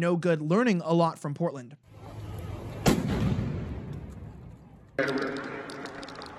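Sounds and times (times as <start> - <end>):
speech: 0.0 - 1.9, 5.0 - 5.6
noisy outdoor crowd at a street protest: 1.8 - 5.8
explosions during a street protest in Louisville: 2.8 - 4.0.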